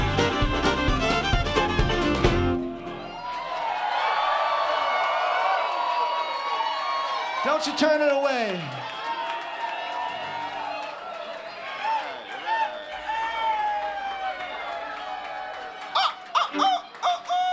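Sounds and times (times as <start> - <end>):
several roosters crowing outdoors: 0.0 - 7.3, 9.0 - 17.5
speech: 7.6 - 8.9.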